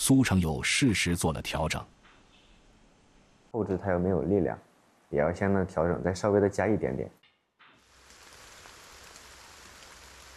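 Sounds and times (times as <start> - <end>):
speech: 0.0 - 2.0, 3.6 - 7.2
rain falling with drop patter on surfaces: 7.8 - 10.3.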